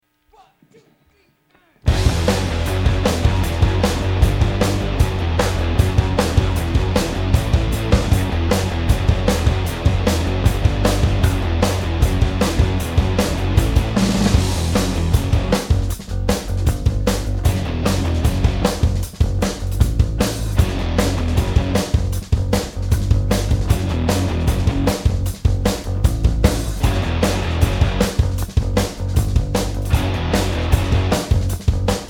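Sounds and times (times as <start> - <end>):
overdrive instrumental music: 1.9 - 32.0.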